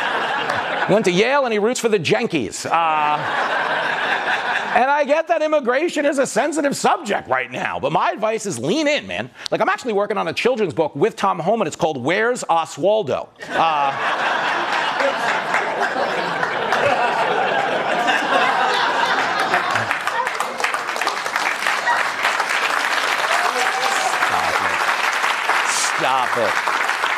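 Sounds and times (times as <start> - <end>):
audience laughter: 0.0 - 1.2, 2.7 - 4.8, 13.4 - 21.0, 23.6 - 24.8
speech: 0.9 - 15.5, 26.0 - 26.7
audience applause: 14.0 - 27.1.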